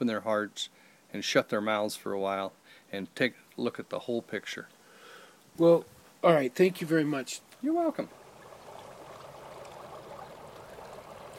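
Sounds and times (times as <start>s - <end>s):
speech: 0.0s - 4.8s, 5.6s - 8.2s
small mountain stream flowing among granite cliffs and whitebark pine trees: 7.8s - 11.3s.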